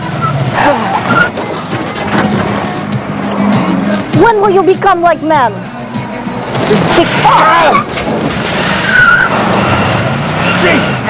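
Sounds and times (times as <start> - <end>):
short car tire squeals: 0.0 - 1.6, 6.8 - 11.0
car engine roaring while driven badly: 0.0 - 11.0
speech: 4.2 - 5.6, 6.6 - 8.1, 10.6 - 11.0.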